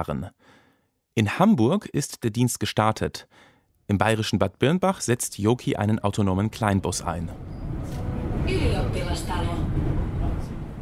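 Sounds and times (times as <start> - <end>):
speech: 0.0 - 0.6, 1.2 - 10.0
tram rumbling through a busy street in Helsinki: 5.9 - 10.7
high metallic squeals of tram: 7.4 - 8.0.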